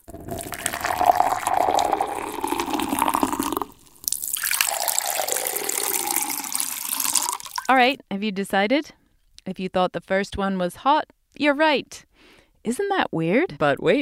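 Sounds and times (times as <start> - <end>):
hot then cold liquid poured into glass: 0.0 - 7.7
speech: 7.7 - 14.0.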